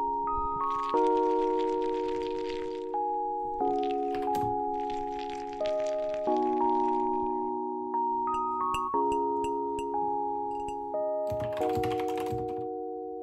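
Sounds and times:
simple melody: 0:00.0 - 0:13.2
quick keyboard typing: 0:03.8 - 0:06.2, 0:08.3 - 0:12.7.

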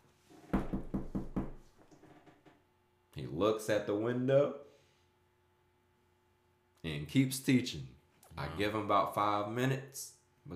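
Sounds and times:
quick firm knocks on a wooden door: 0:00.5 - 0:01.7
speech: 0:03.2 - 0:04.7, 0:07.1 - 0:08.0, 0:08.6 - 0:10.5.

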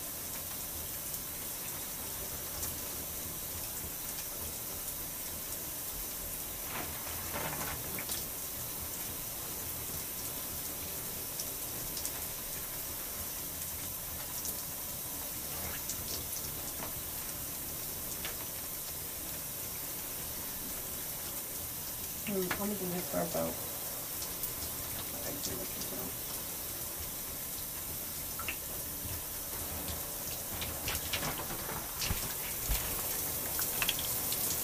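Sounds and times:
shower-like running water over braided hair: 0:00.0 - 0:34.6
speech: 0:22.6 - 0:23.6
rustling as scalp is shampooed with fingers: 0:30.3 - 0:34.0.

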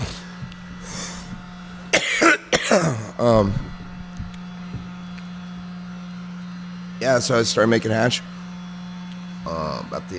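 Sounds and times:
steady low electrical hum: 0:00.0 - 0:10.1
man coughing harshly with a bug in his throat: 0:01.8 - 0:03.8
speech: 0:02.8 - 0:03.7, 0:07.1 - 0:08.4, 0:10.0 - 0:10.1.

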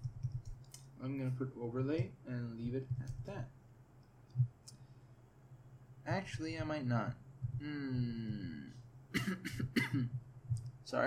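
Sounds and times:
steady tonal hum: 0:00.0 - 0:11.0
speech: 0:01.0 - 0:03.6, 0:06.1 - 0:11.0
person with a slight cough coughing: 0:09.1 - 0:10.2.

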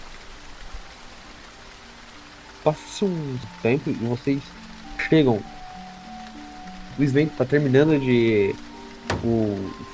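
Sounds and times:
steady rain pattering on a surface: 0:00.0 - 0:09.9
speech: 0:02.6 - 0:05.5, 0:07.0 - 0:09.9
soft low thump: 0:09.0 - 0:09.5.

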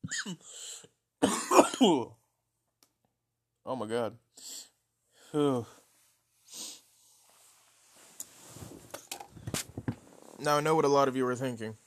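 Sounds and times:
person coughing after a wax dab: 0:00.0 - 0:00.5, 0:01.2 - 0:02.1
speech: 0:00.2 - 0:00.7, 0:01.8 - 0:02.2, 0:03.7 - 0:04.5, 0:05.3 - 0:05.8, 0:10.4 - 0:11.8.

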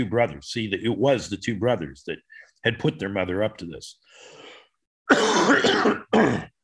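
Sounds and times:
speech: 0:00.0 - 0:04.4, 0:05.1 - 0:06.5
person clearing throat: 0:05.1 - 0:06.6
person coughing: 0:05.1 - 0:06.6.

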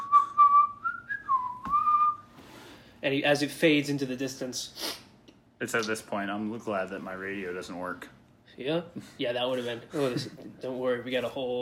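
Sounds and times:
man whistling a cheerful melody while walking down a snow-covered street: 0:00.0 - 0:02.3
speech: 0:03.0 - 0:05.0, 0:05.6 - 0:11.6.

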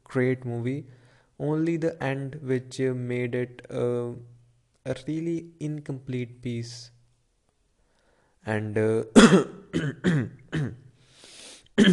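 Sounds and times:
speech: 0:00.1 - 0:07.0, 0:08.4 - 0:10.8, 0:11.8 - 0:11.9
person with a persistent cough giving harsh throaty coughs: 0:09.2 - 0:10.9, 0:11.8 - 0:11.9.

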